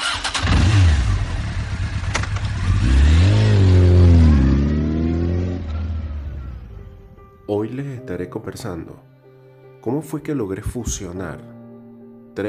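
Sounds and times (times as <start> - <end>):
car engine cranking, idling and revving: 0.0 - 7.0
speech: 7.6 - 9.2, 9.8 - 11.6.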